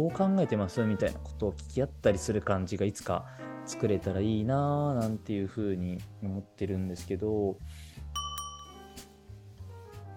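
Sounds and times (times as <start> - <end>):
speech: 0.0 - 8.2
doorbell ringing outside: 8.2 - 9.2.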